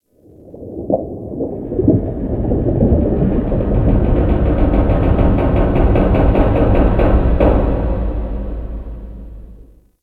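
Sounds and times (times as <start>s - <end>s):
ocean ship hull creaking: 2.0s - 9.1s.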